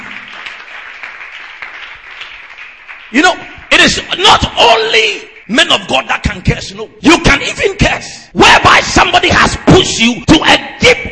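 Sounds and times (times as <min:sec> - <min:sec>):
congregation clapping: 0:00.0 - 0:04.5
speech: 0:03.1 - 0:11.1.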